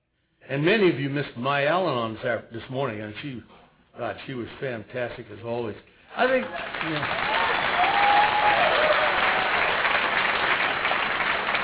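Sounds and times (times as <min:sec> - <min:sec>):
speech: 0:00.5 - 0:07.4
convention audience applause: 0:06.3 - 0:11.6.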